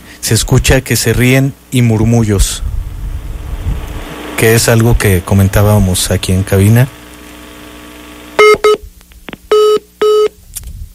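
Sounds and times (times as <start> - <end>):
speech: 0.2 - 2.7, 4.4 - 7.0
telephone line tones after a call is cut off: 8.4 - 8.8, 9.5 - 10.4.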